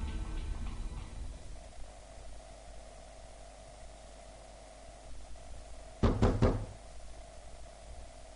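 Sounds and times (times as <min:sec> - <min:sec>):
quiet low rumbling noise: 0:00.0 - 0:08.3
loud rapid heavy knocks on a door: 0:06.0 - 0:06.8.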